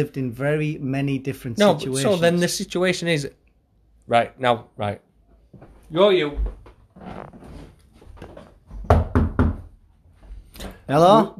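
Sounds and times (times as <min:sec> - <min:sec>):
speech: 0:00.0 - 0:03.4, 0:04.1 - 0:07.6, 0:10.9 - 0:11.3
knocking on a door: 0:08.7 - 0:09.8.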